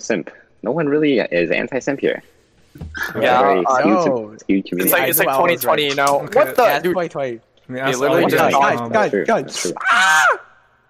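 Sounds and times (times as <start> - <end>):
speech: 0.0 - 10.4
people yelling and screaming: 9.6 - 10.6.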